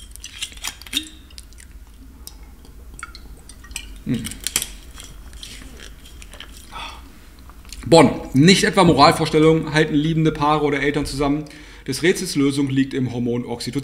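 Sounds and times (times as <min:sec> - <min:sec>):
person sipping a drink: 0:01.2 - 0:07.8
speech: 0:04.1 - 0:04.4, 0:07.9 - 0:13.8.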